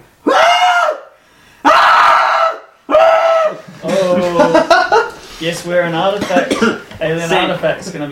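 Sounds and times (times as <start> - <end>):
loud piercing screams: 0.2 - 3.7
laughter: 3.9 - 5.3
speech: 5.4 - 8.1.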